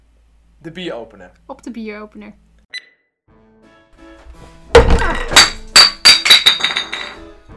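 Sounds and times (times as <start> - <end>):
speech: 0.6 - 2.5
glass beer bottle falling and hitting the floor: 4.7 - 7.3.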